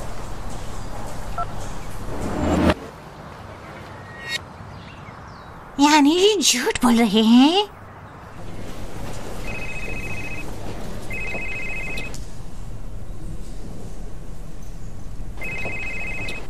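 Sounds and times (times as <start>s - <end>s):
speech: 5.8s - 7.8s
telephone ringing with electronic trilling: 9.3s - 12.2s, 15.4s - 16.4s.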